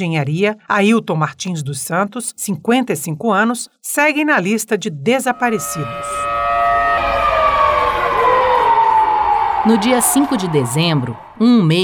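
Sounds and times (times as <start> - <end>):
speech: 0.0 - 6.4, 9.6 - 11.8
memorial siren wailing: 5.2 - 11.4.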